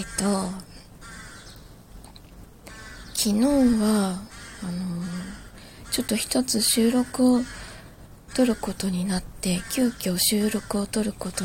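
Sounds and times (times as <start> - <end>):
speech: 0.0 - 0.7, 3.2 - 7.6, 8.4 - 11.4
crow cawing: 0.0 - 1.6, 2.6 - 3.2, 4.2 - 6.2, 7.2 - 8.8, 9.5 - 10.9
faint hiss: 0.0 - 11.4.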